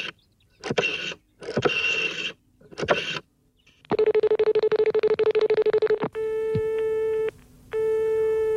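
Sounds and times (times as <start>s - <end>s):
crackly bursts on a telephone line: 0.0s - 6.2s
long steady telephone beeps: 4.0s - 8.5s.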